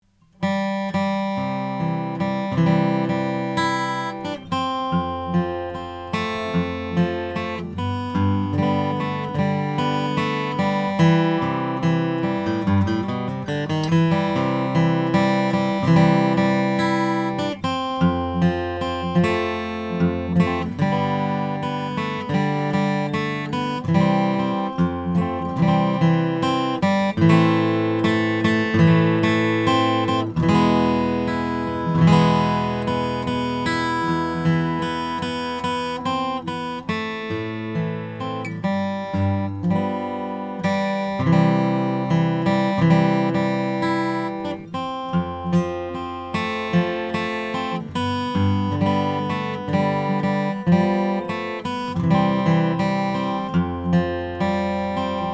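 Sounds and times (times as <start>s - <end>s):
Langejans R 6 Brazilian rosewood guitar: 0.0s - 55.3s.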